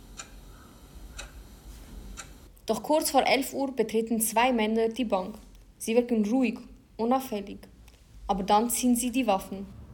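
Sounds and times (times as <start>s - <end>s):
wall clock ticking in a bank office: 0.2s - 1.4s
speech: 2.7s - 7.7s, 8.3s - 9.8s.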